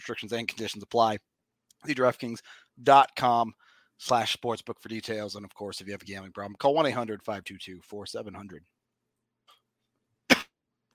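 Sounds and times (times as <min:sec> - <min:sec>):
speech: 0:00.0 - 0:08.7
faint breath: 0:02.4 - 0:02.8, 0:03.6 - 0:04.0
sharp forceful cough: 0:10.3 - 0:10.6.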